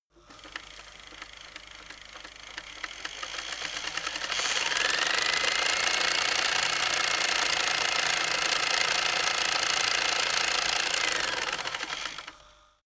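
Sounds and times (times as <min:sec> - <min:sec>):
servo rattle: 0:00.4 - 0:12.4.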